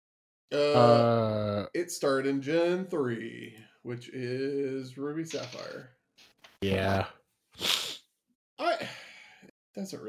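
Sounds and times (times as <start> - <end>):
speech: 0.5 - 6.0, 6.6 - 7.8, 9.8 - 10.0
person sneezing: 7.6 - 8.0.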